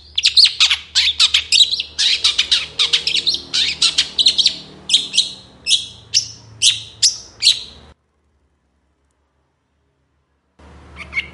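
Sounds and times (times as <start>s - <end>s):
long-tailed shrike giving harsh scratchy squawks and grating notes in the morning: 0.0s - 7.9s.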